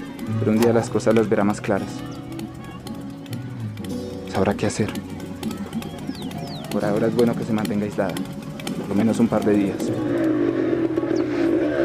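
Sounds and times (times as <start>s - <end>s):
speech: 0.3s - 2.2s, 4.4s - 5.1s, 6.8s - 10.7s
motorcycle engine droning as a man rides away: 3.0s - 11.8s.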